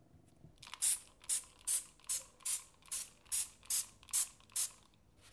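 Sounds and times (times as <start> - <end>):
trigger spray bottle spraying cleaner onto a cooker hob: 0.7 - 4.8.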